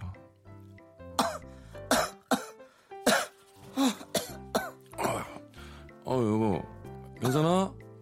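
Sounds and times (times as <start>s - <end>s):
person coughing: 1.2s - 5.4s, 7.2s - 7.5s
throat clearing: 1.2s - 5.4s, 7.2s - 7.5s
speech: 6.1s - 6.7s.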